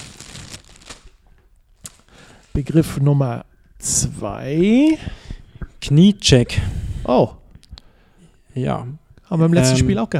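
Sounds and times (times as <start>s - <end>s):
hand rummaging in a bag with papery rustling: 0.0s - 1.2s, 1.8s - 2.6s
speech: 2.6s - 5.2s, 5.8s - 7.4s, 8.6s - 10.1s.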